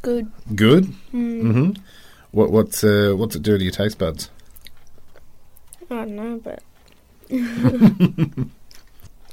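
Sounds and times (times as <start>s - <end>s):
speech: 0.0s - 4.4s, 5.9s - 6.7s, 7.3s - 8.6s
chewing crunchy apricot mini sponge cake with chocolate layer: 4.4s - 5.9s, 6.6s - 7.2s, 8.6s - 9.3s.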